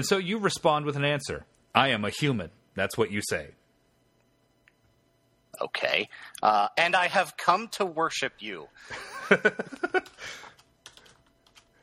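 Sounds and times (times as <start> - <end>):
speech: 0.0 - 3.6, 5.6 - 10.4
laughter: 8.9 - 10.4
typing on a computer keyboard: 9.9 - 11.8.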